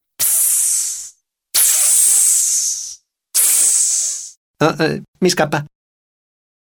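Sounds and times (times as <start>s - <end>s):
person imitating snake hiss: 0.2s - 4.4s
speech: 4.6s - 5.7s.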